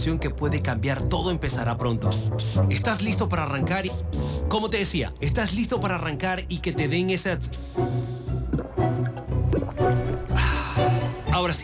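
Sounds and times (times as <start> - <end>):
speech: 0.0 - 8.2, 11.4 - 11.6
sparkling water pouring with bubbly splashing gurgle: 7.8 - 11.3.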